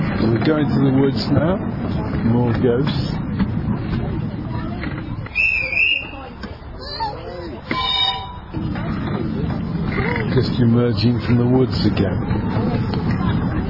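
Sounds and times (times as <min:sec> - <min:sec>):
miniature railway steam train rumbling: 0:00.0 - 0:13.6
people chattering: 0:00.0 - 0:13.6
speech: 0:00.4 - 0:03.2, 0:10.4 - 0:12.4
short high steam train whistle blasts: 0:07.7 - 0:08.5.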